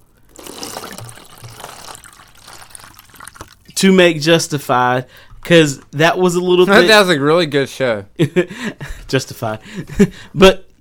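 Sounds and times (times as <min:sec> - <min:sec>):
alcohol being poured into a container: 0:00.0 - 0:03.8
speech: 0:03.8 - 0:10.7.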